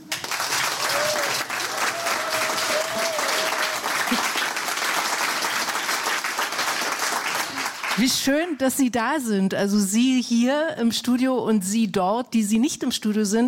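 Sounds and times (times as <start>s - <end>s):
large studio audience applause: 0.0s - 8.1s
faint whoops or cheers: 0.7s - 4.3s
speech: 8.0s - 13.4s.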